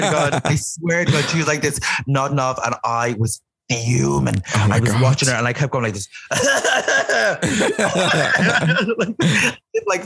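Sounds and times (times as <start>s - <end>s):
laughter: 0.0s - 1.6s, 6.3s - 9.4s
speech: 0.0s - 10.0s
person coughing deliberately in church during mass: 1.0s - 1.7s, 6.4s - 9.6s.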